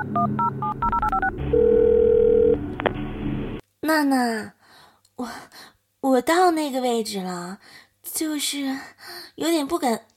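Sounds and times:
phone keypad beeps dialing a number: 0.0 - 1.3
speech: 0.0 - 1.8, 3.9 - 4.6, 5.2 - 10.1
phone ringing tone: 0.0 - 2.7.

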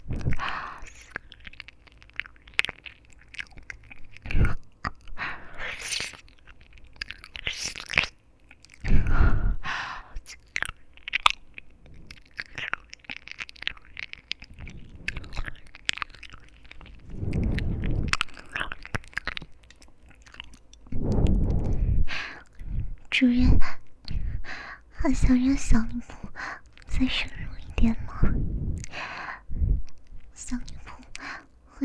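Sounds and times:
mouth chewing sounds of ear-eating ASMR: 0.0 - 23.2, 23.8 - 31.7
speech: 25.0 - 26.2, 27.0 - 28.0.

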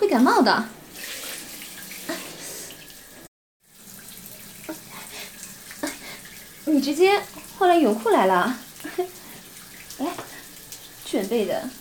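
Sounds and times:
speech: 0.0 - 0.8, 6.7 - 9.2, 10.0 - 10.3, 11.1 - 11.8
water running from a faucet whose valve will not close: 0.0 - 11.8.

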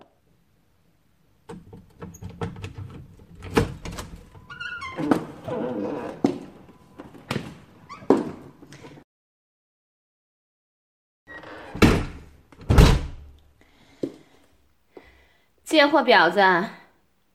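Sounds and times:
door opening: 1.5 - 8.6
speech: 15.7 - 16.8.

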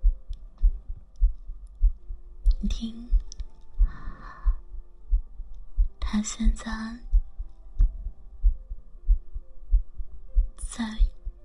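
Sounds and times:
steady heartbeat thumping: 0.0 - 11.4
brief whispered voice: 2.5 - 4.6, 6.0 - 7.1, 10.6 - 11.2
speech: 2.6 - 3.2, 6.1 - 7.1.

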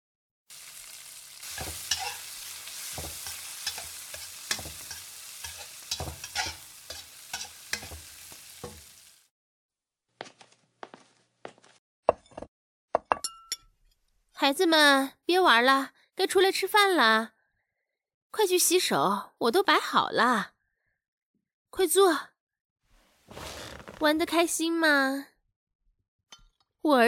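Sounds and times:
loud steady sizzle of frying in a kitchen: 0.5 - 9.3
stirring scrapes and knocks: 1.5 - 9.0
utensils or dishes clinking: 1.6 - 8.0
speech: 14.4 - 17.4, 18.3 - 20.5, 21.7 - 22.3, 23.3 - 25.3, 26.8 - 27.0.

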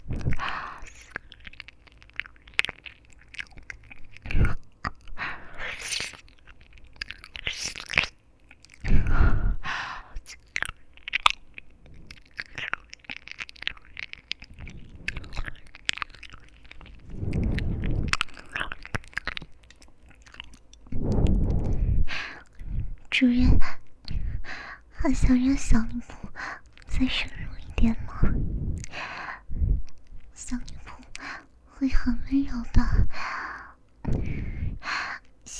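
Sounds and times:
soft breathy noise: 0.0 - 1.4, 4.2 - 5.9, 8.8 - 10.3, 14.5 - 15.7, 16.4 - 18.8, 20.9 - 35.3
biting and chewing on crunchy little ears: 0.0 - 8.9, 10.3 - 21.8
speech: 25.0 - 26.2, 27.0 - 28.0.

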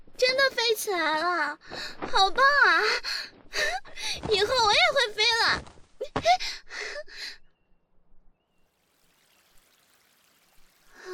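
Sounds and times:
speech: 0.5 - 7.4
faint steady water trickle: 8.6 - 11.1.

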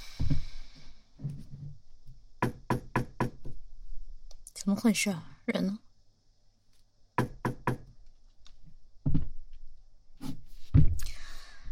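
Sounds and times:
dull thumps: 0.0 - 3.6, 9.0 - 9.6, 10.2 - 11.1
quick sharp knocks on a door: 2.4 - 3.6, 7.2 - 7.9, 9.0 - 9.4
speech: 4.7 - 5.8.

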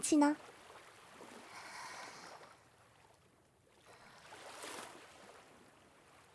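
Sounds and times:
sea waves washing in and receding at the seaside: 0.4 - 6.3.

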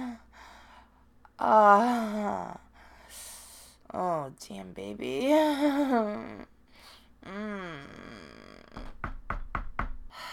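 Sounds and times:
speech: 1.4 - 3.3, 3.9 - 6.5, 7.2 - 8.2
trick-or-treaters knocking on a door on Halloween: 8.8 - 10.1.

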